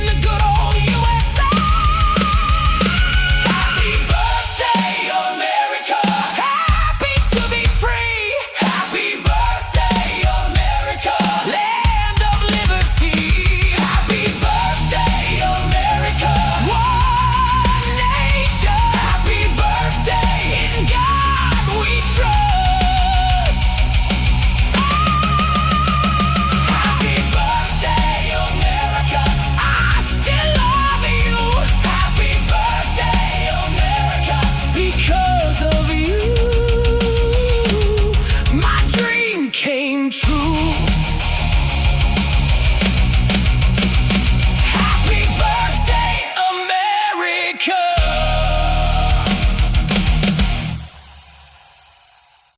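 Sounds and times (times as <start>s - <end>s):
heavy metal birthday chorus singing: 0.0s - 52.5s.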